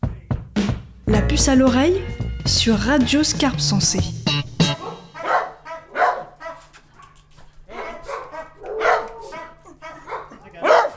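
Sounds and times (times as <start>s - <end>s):
speech: 1.2s - 4.2s
dogs barking in a kennel at an animal shelter: 4.6s - 10.9s.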